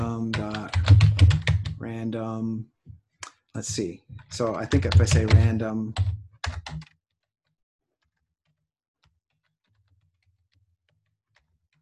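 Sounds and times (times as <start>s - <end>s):
typing on a computer keyboard: 0.0s - 1.8s, 4.2s - 11.8s
speech: 3.6s - 6.9s.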